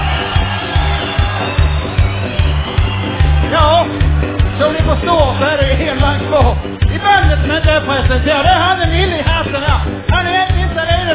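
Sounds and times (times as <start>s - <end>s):
whoops: 0.0s - 3.5s
large crowd applauding and cheering: 0.0s - 11.1s
steady rhythmic thumping: 0.0s - 11.1s.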